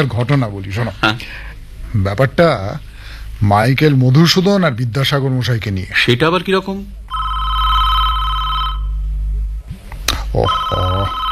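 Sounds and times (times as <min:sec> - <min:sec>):
speech: 0:00.0 - 0:07.0, 0:10.3 - 0:11.2
electronic telephone ringing at a reception desk: 0:07.1 - 0:09.0, 0:10.5 - 0:11.3.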